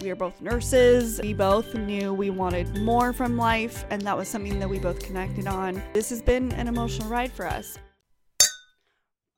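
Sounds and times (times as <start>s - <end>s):
speech: 0.0s - 7.9s
glasses clinking in a toast: 8.4s - 8.8s.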